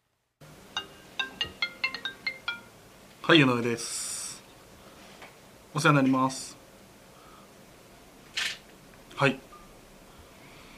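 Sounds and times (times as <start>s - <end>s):
office telephone ringing with bright electronic tones: 0.8s - 2.7s
speech: 3.3s - 4.1s, 5.8s - 6.6s, 9.2s - 9.5s.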